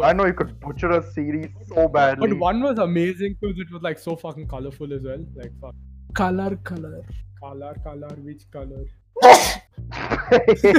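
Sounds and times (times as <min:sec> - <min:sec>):
speech: 0:00.0 - 0:10.7
loud sneeze: 0:09.2 - 0:10.4
laughter: 0:09.9 - 0:10.7.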